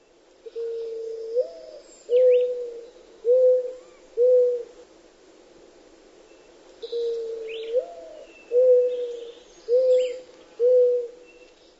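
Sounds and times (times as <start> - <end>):
mourning dove cooing: 0.4 - 4.8, 6.8 - 11.4.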